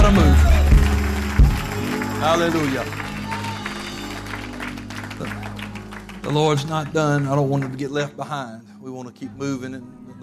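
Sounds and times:
audience clapping: 0:00.0 - 0:07.9
speech: 0:02.2 - 0:03.1, 0:06.3 - 0:10.2.

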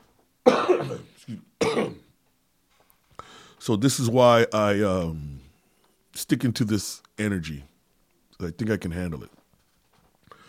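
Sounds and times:
person coughing: 0:00.5 - 0:02.1
speech: 0:00.8 - 0:01.9, 0:03.6 - 0:05.4, 0:06.2 - 0:07.7, 0:08.4 - 0:09.4.

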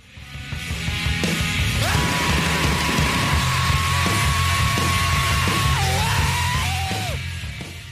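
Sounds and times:
heavy rock band backing: 0:00.1 - 0:07.9
rock singer screaming: 0:01.7 - 0:07.3.

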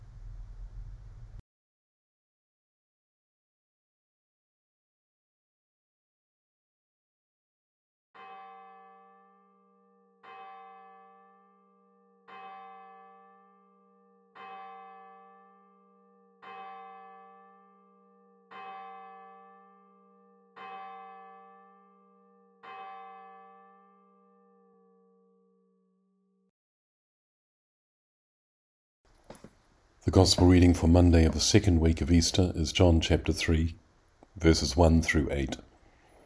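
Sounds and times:
single bell tolling: 0:00.0 - 0:01.4
sustained low hum: 0:00.0 - 0:01.4
speech: 0:30.1 - 0:33.8, 0:34.4 - 0:35.7.

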